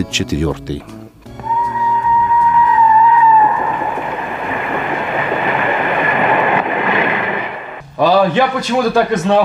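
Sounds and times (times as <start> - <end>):
speech: 0.0 - 1.0, 8.0 - 9.4
electric commuter train whistling tone: 1.4 - 5.0
electric commuter train passing: 1.4 - 7.9.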